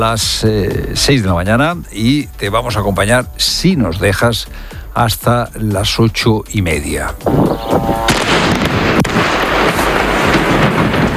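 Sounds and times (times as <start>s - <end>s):
speech: 0.0s - 8.9s
continuous rumbling roar: 7.2s - 11.1s
bombs exploding in an air strike over Lebanon: 7.3s - 11.1s.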